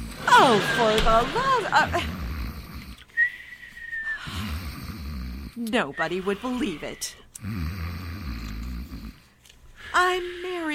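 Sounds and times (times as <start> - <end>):
speech: 0.4 - 2.2, 5.6 - 7.7, 9.9 - 10.7
man snoring loudly and raspily with whistling exhale: 1.5 - 3.0, 4.2 - 5.6, 6.2 - 9.2.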